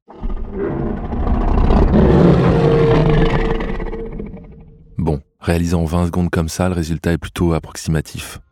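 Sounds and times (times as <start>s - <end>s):
deep big-cat roar slowed down to recreate a dinosaur cry: 0.1s - 5.0s
speech: 5.5s - 8.4s.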